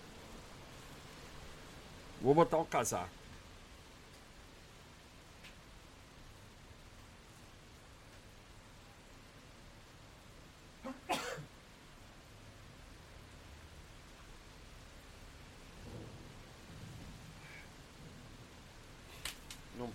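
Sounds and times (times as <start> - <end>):
heavy rain hissing: 0.0 - 19.9
speech: 2.2 - 3.2
sneeze from allergy: 10.8 - 11.5.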